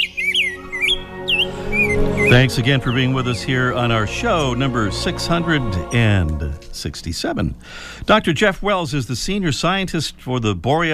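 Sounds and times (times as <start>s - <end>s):
rose-breasted grosbeak singing a sweet warbling song: 0.0s - 4.2s
speech: 2.3s - 10.9s.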